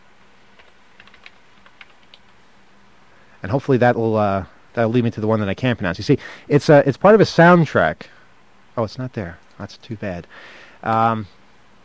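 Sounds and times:
typing a word on a computer keyboard: 0.5 - 2.4
speech: 3.4 - 8.2, 8.8 - 11.4.

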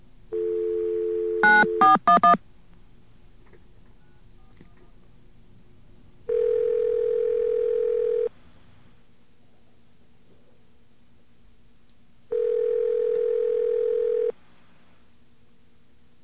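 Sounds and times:
telephone dial tone: 0.4 - 2.4, 6.3 - 8.3, 12.3 - 14.3
telephone keypad beeps: 1.4 - 2.4.

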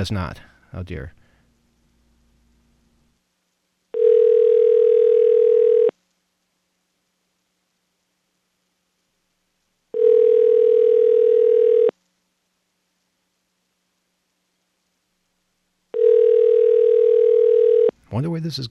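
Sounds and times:
speech: 0.0 - 1.2, 18.2 - 18.6
faint hiss on the ringback tone: 0.0 - 18.6
telephone ringback tone on an international call to Japan: 4.0 - 5.9, 10.0 - 11.9, 16.0 - 17.9.

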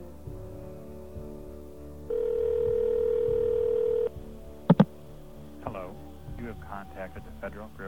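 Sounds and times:
electronic telephone ring tone heard through the receiver: 2.1 - 4.1
speech: 6.7 - 7.8.

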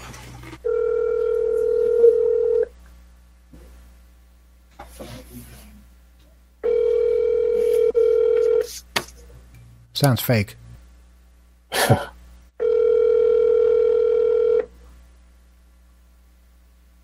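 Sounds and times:
telephone ringback tone on an outgoing call: 0.6 - 2.7, 6.6 - 8.7, 12.6 - 14.7
speech: 10.0 - 10.6, 11.9 - 12.1.

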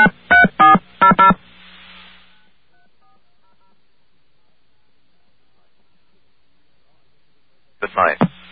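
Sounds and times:
touch-tone keypad beeps dialing a radio station phone number: 0.0 - 1.4.

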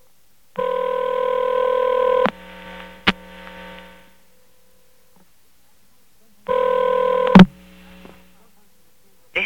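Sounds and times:
faint hum on the telephone line: 0.0 - 9.4
long electronic telephone line tones of a collect call: 0.6 - 2.3, 6.5 - 7.5.

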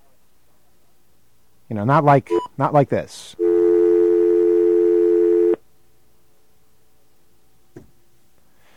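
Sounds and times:
speech: 1.7 - 3.4
modern telephone dial tone: 3.4 - 5.6.

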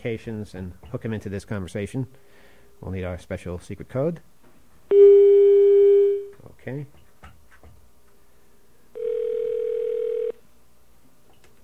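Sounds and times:
speech: 0.0 - 4.3, 6.6 - 7.0
telephone tone while calling someone back after a dropped mobile call: 4.9 - 6.3, 9.0 - 10.4.

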